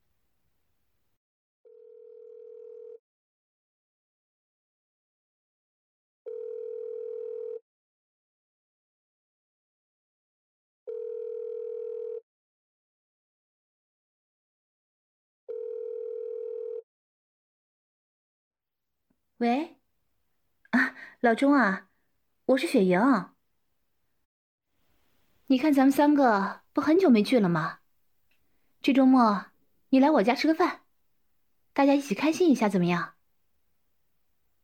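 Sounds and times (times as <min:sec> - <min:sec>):
telephone ringback tone while a phone call is being placed: 0:01.7 - 0:03.0, 0:06.3 - 0:07.6, 0:10.9 - 0:12.2, 0:15.5 - 0:16.8
speech: 0:19.4 - 0:19.8, 0:20.7 - 0:21.9, 0:22.5 - 0:23.3, 0:25.5 - 0:27.8, 0:28.8 - 0:30.8, 0:31.8 - 0:33.2.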